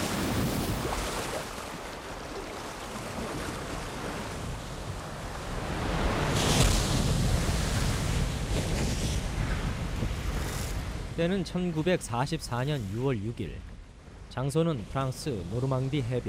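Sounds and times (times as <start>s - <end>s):
rough sea waves crashing around a US Navy landing craft: 0.0s - 16.2s
gusty wind buffeting the microphone: 3.1s - 11.2s
speech: 11.2s - 13.7s, 14.4s - 16.2s.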